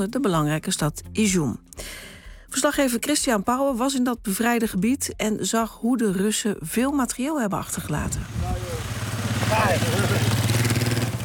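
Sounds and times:
speech: 0.0 - 8.7, 9.5 - 10.4
motorcycle carrying two soldiers riding past on a muddy road: 7.8 - 11.2.

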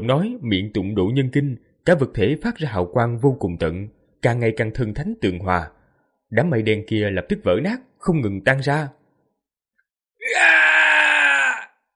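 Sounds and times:
speech: 0.0 - 9.0
two figures crying out loudly together in a harsh scream: 10.2 - 11.9.

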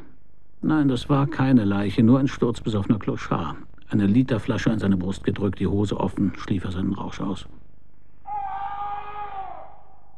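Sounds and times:
low steady hum: 0.0 - 8.2
speech: 0.6 - 7.5
high sustained scream from a bug-infested house: 8.2 - 10.1.

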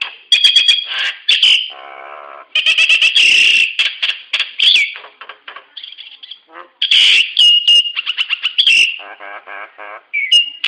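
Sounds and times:
Nias hill myna clattering chirps and slurred whistles: 0.0 - 1.8, 2.6 - 5.0, 5.8 - 9.1, 10.1 - 10.6.

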